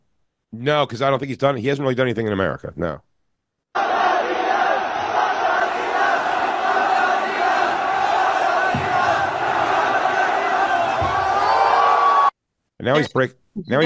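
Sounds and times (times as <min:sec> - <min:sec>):
speech: 0:00.6 - 0:03.1, 0:12.8 - 0:13.8
large crowd of Chinese kids chanting: 0:03.8 - 0:12.3
large crowd of Chinese kids screaming: 0:05.6 - 0:12.3
thumps: 0:05.9 - 0:11.7.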